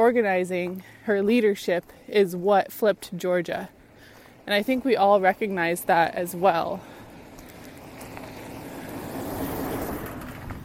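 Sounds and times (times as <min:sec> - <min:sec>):
speech: 0:00.0 - 0:03.8, 0:04.5 - 0:07.0
dump truck rumbling past outside: 0:06.8 - 0:10.6.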